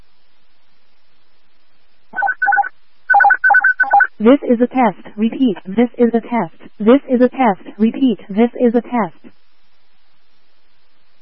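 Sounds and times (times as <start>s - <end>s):
paired electronic dispatch alert tones for a vehicle accident response: 2.2s - 4.1s
speech: 4.2s - 9.4s.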